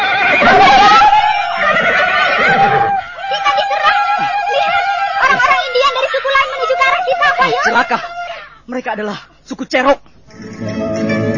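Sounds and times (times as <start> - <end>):
horse of charging riders whinnying: 0.0 - 3.1
laughter: 0.0 - 8.4
speech: 8.8 - 10.8.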